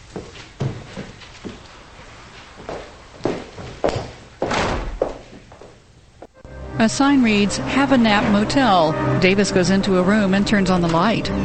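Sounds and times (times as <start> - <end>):
footsteps of a woman climbing stairs: 0.0 - 6.4
speech: 6.8 - 11.4.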